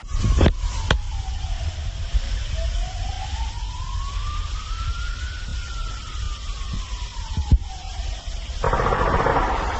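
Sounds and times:
wailing siren outdoors: 0.0 - 9.7
dense rapid burst of gunfire: 8.6 - 9.7
sharp gunshots: 8.6 - 9.7.

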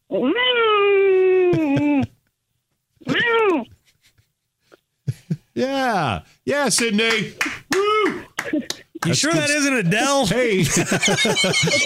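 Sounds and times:
speech: 0.1 - 0.6, 5.6 - 11.8
person imitating cat meows over the telephone: 0.1 - 2.0, 3.0 - 3.7
laughter: 1.4 - 2.2, 8.0 - 9.8, 10.4 - 11.8.

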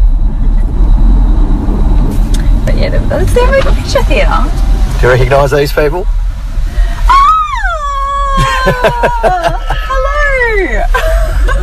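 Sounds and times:
road and engine rumble inside a moving car: 0.0 - 11.6
speech: 3.1 - 6.2, 8.6 - 11.6
laughter: 8.3 - 10.3.

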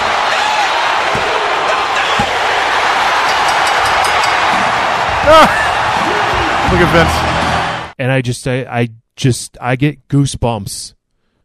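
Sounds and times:
packed arena crowd roaring at a wrestling event: 0.0 - 8.0
arena crowd counting along with pinfall: 1.6 - 8.0
speech: 5.3 - 5.6, 6.7 - 7.3, 8.0 - 11.0.

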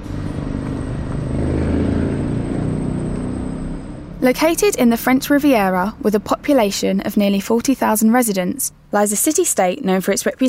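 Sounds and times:
V12 turbo racing engine high-pitched buzz at the Monaco Grand Prix: 0.0 - 4.7
speech: 4.2 - 10.4.

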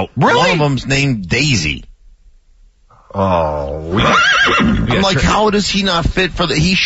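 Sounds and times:
speech: 0.0 - 1.9, 3.1 - 6.8
horse neighing: 3.2 - 5.1.

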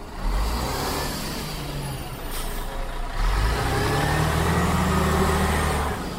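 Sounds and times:
bus engine idling and accelerating: 0.0 - 6.1
loud road noise: 0.0 - 6.1.

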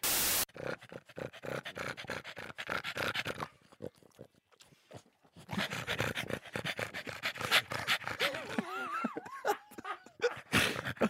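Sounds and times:
pug dog panting heavily: 0.5 - 3.8, 4.8 - 8.6, 9.8 - 11.0
laughter: 8.2 - 11.0.

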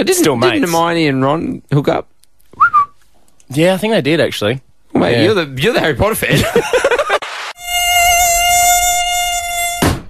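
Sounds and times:
speech: 0.0 - 2.1, 3.5 - 7.0
laughter: 6.3 - 7.2
mosquito whining: 7.6 - 10.0.

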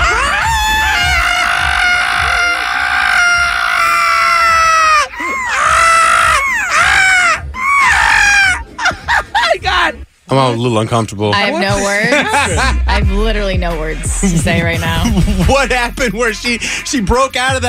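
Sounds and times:
people imitating a monkey mating call with shrieks and howls: 0.0 - 9.5
laughter: 5.0 - 10.0, 11.5 - 13.0, 14.4 - 16.6
speech: 10.3 - 17.6.

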